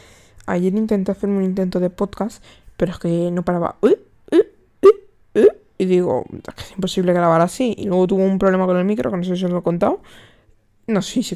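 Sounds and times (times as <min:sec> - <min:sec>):
speech: 0:00.5 - 0:04.1, 0:05.4 - 0:10.3, 0:10.9 - 0:11.3
person hiccuping: 0:04.3 - 0:05.7.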